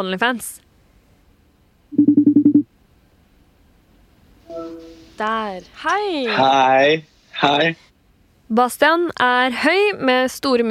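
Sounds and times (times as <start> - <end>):
speech: 0.0 - 0.6, 4.5 - 7.9, 8.5 - 10.7
steady buzzing ring tone from a call connecting: 4.5 - 5.2
short electronic beeps of a phone being dialed: 4.5 - 5.3.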